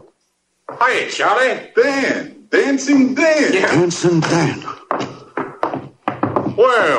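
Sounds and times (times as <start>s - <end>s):
speech: 0.9s - 4.8s, 6.6s - 6.9s
heavy knocks and rattling pounding on a wooden door: 4.9s - 6.6s.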